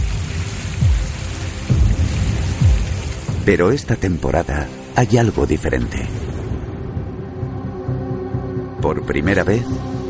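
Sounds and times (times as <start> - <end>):
heavy rain in the jungle: 0.0 - 7.5
speech: 3.4 - 6.3, 8.9 - 10.0.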